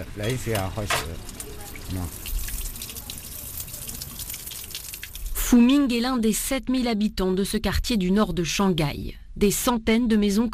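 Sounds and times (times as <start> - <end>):
tap water running into a washbasin, cold and hot mixed: 0.0 - 5.8
speech: 0.1 - 2.2, 5.5 - 10.5.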